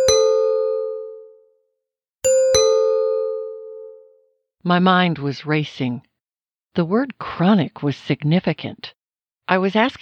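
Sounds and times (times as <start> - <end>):
doorbell chiming: 0.0 - 1.6, 2.2 - 4.2
speech: 4.6 - 6.1, 6.8 - 10.0.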